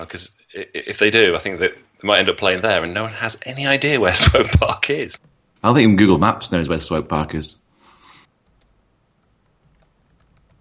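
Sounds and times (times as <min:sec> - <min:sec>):
speech: 0:00.0 - 0:07.6
computer keys being typed: 0:08.4 - 0:10.6.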